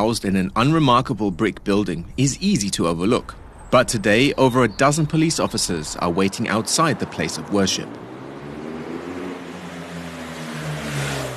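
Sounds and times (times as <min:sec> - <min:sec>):
speech: 0:00.0 - 0:08.1
police motorcycle engine droning on Hallam Street in London: 0:00.0 - 0:11.3.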